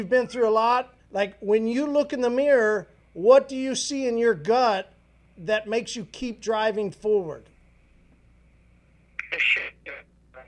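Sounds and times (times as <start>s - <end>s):
speech: 0.0s - 7.5s, 9.3s - 9.8s
faint steady hum: 0.0s - 10.4s
garbled tinny voice on a breaking-up phone call: 9.2s - 10.4s.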